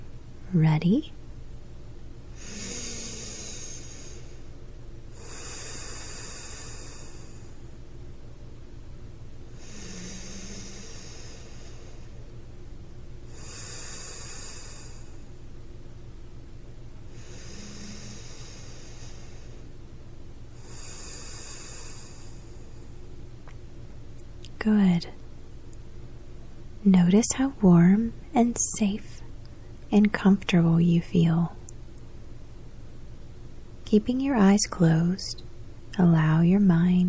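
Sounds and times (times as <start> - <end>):
low hum: 0.0 - 37.0
speech: 0.5 - 1.2, 26.9 - 29.1, 29.9 - 31.6, 33.9 - 37.0
slow deep breaths: 2.2 - 7.9, 9.5 - 12.6, 13.2 - 15.6, 16.8 - 23.3.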